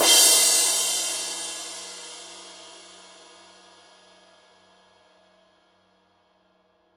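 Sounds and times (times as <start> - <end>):
Paiste 2002 power crash cymbal edge hit: 0.0 - 3.7.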